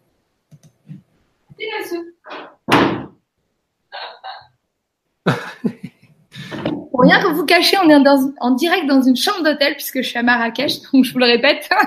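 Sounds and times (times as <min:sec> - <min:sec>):
speech: 0:01.6 - 0:02.5, 0:07.1 - 0:11.8
knocking on a hotel room door in Marrakech: 0:02.7 - 0:03.2
laughter: 0:05.3 - 0:06.7
person coughing: 0:05.3 - 0:06.7.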